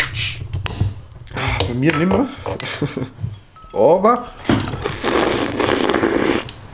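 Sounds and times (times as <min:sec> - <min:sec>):
speech: 0:01.7 - 0:04.9
laughter: 0:02.5 - 0:03.2
opened beer bottle fizzing and foaming over: 0:04.4 - 0:06.7.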